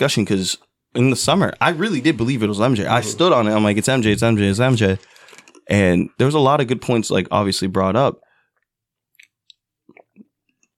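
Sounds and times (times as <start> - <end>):
speech: 0.0 - 5.1, 5.7 - 8.2
wet gulping and smacking mouth sounds: 1.6 - 5.7, 9.1 - 10.7.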